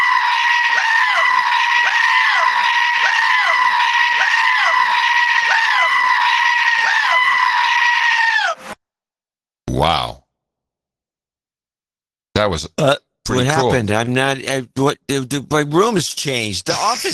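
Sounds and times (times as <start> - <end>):
goat screaming: 0.0 - 8.8
speech: 12.4 - 17.1.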